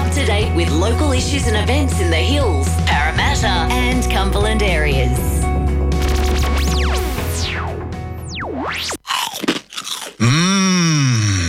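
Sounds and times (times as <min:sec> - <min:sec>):
speech: 0:00.1 - 0:05.3
swooping wobbling electronic sound effects: 0:05.9 - 0:09.0
crunching bites into slow-cooked crispy pork crackling: 0:08.9 - 0:11.4.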